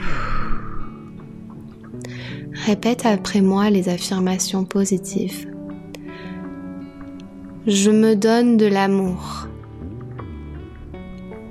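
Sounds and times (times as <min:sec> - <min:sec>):
deep breath during a guided breathing exercise: 0:00.0 - 0:01.2, 0:02.0 - 0:02.5, 0:06.0 - 0:06.5
speech: 0:02.0 - 0:05.6, 0:07.6 - 0:09.5.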